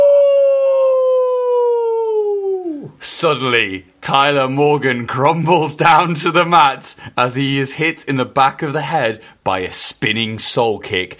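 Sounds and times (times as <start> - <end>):
person howling like a wolf: 0.0 - 3.0
speech: 3.0 - 11.1.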